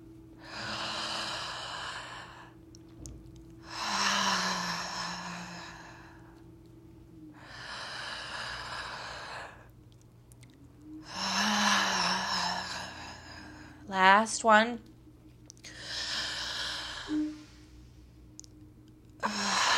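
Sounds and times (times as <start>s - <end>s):
deep breathing during a guided breathing exercise: 0.4s - 2.6s, 3.6s - 6.5s, 7.3s - 9.8s, 11.0s - 13.9s, 15.6s - 18.2s, 19.2s - 19.7s
speech: 14.3s - 14.9s.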